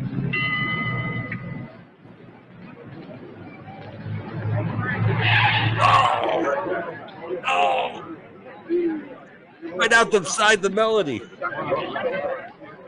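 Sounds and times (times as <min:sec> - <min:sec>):
rumbling crowd-like din: 0:00.0 - 0:12.8
car tires skidding with a high screech: 0:04.5 - 0:06.5
people screaming: 0:05.2 - 0:06.6, 0:07.4 - 0:08.1
speech: 0:09.8 - 0:11.9.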